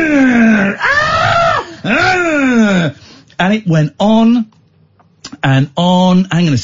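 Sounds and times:
person imitating a woman's screaming from a horror film: 0.0 - 3.0
speech: 3.4 - 4.6, 5.4 - 6.6.

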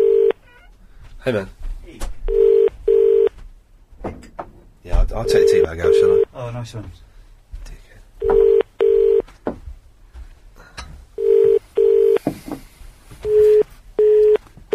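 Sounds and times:
electronic telephone keypad dialing tones: 0.0 - 0.4, 2.3 - 3.3, 8.2 - 9.2, 11.2 - 12.2, 13.2 - 14.7
speech: 1.2 - 1.6, 5.1 - 7.1.

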